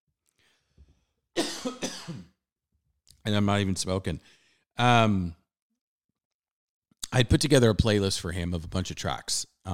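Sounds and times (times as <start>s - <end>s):
person coughing: 1.4s - 2.4s
speech: 1.6s - 2.2s, 3.2s - 5.4s, 7.1s - 9.7s.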